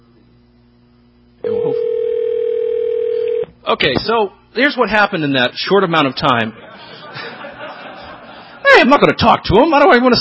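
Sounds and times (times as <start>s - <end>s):
telephone dial tone while dialing: 1.4s - 3.5s
speech: 3.7s - 6.6s, 8.8s - 10.1s
laughter: 6.4s - 9.2s.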